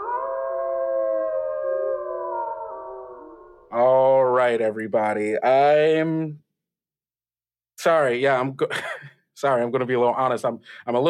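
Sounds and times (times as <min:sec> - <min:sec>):
several people howling together: 0:00.0 - 0:03.6
speech: 0:04.5 - 0:06.4, 0:07.8 - 0:11.0.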